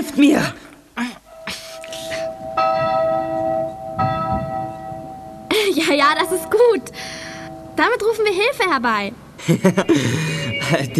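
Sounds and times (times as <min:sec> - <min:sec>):
speech: 0:00.1 - 0:01.6, 0:07.8 - 0:10.9
church bells ringing: 0:01.3 - 0:10.9.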